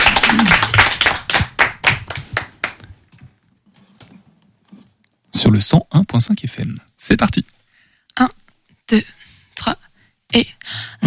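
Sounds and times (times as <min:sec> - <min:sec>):
small audience applause: 0:00.0 - 0:02.9
speech: 0:05.5 - 0:07.5, 0:08.2 - 0:11.0.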